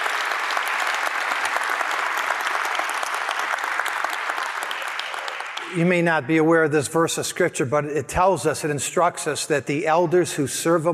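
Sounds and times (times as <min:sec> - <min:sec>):
church audience applauding its elders: 0:00.0 - 0:06.0
speech: 0:05.7 - 0:10.9.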